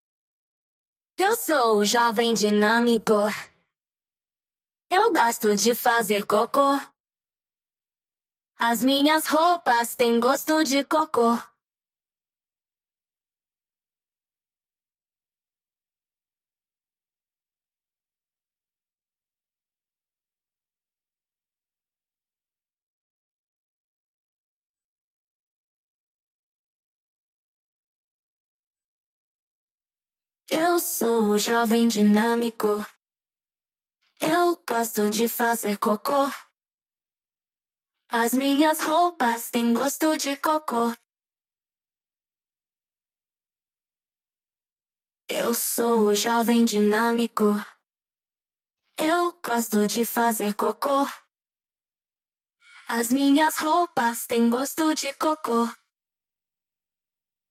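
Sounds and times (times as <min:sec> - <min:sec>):
vocals: 0:01.2 - 0:03.6, 0:04.9 - 0:07.0, 0:08.6 - 0:11.6, 0:30.5 - 0:33.0, 0:34.2 - 0:36.6, 0:38.1 - 0:41.1, 0:45.3 - 0:47.8, 0:49.0 - 0:51.3, 0:52.7 - 0:55.9.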